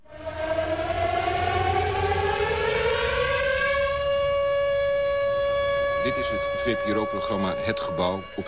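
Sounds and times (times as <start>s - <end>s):
air raid siren wailing: 0.0s - 8.4s
low rumble: 0.0s - 8.4s
speech: 6.0s - 8.4s.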